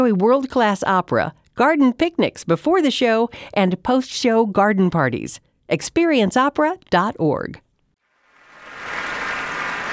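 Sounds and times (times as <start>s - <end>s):
speech: 0.0s - 7.6s
musicians applauding the orchestra at an opera curtain call: 8.5s - 9.9s.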